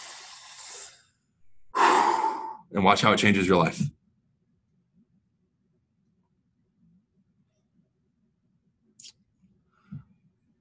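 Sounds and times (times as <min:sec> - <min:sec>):
person doing a deep breathing exercise: 0:00.0 - 0:02.7
speech: 0:02.7 - 0:04.0.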